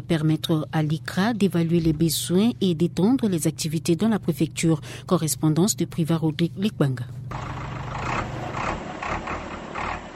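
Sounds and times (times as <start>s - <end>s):
speech: 0.1s - 7.6s
tractor engine running: 7.3s - 10.1s.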